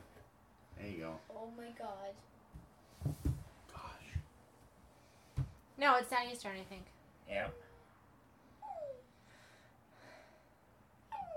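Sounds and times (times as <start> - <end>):
speech: 1.1 - 2.4, 5.8 - 7.6
little dog whimpering: 8.5 - 9.2, 11.0 - 11.3.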